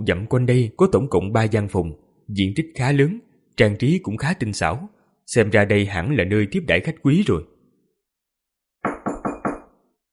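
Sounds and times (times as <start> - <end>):
speech: 0.0 - 7.5
knocking on a room door: 8.8 - 9.8.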